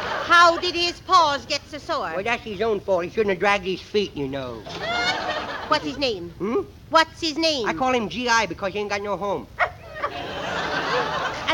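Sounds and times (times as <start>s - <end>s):
laughter: 0.0s - 1.0s, 4.6s - 6.1s, 9.8s - 11.5s
speech: 0.4s - 5.1s, 5.7s - 10.2s
dog barking: 9.6s - 10.1s.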